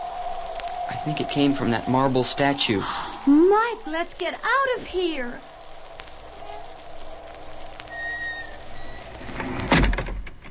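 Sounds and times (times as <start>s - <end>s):
soft rain-like hiss: 0.0s - 9.8s
speech: 1.0s - 5.5s
faint high creak: 7.8s - 10.0s
door in an old furnished house swinging shut: 9.3s - 10.5s.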